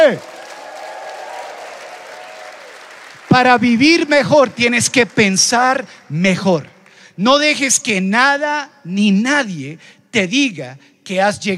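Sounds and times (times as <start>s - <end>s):
speech: 0.0s - 0.3s, 3.4s - 11.5s
large audience shouting joyfully and applauding: 0.0s - 6.2s.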